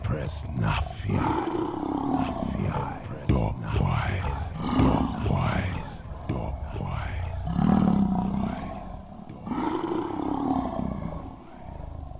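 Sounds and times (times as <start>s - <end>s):
speech: 0.3s - 2.4s
lioness roaring: 1.0s - 12.1s.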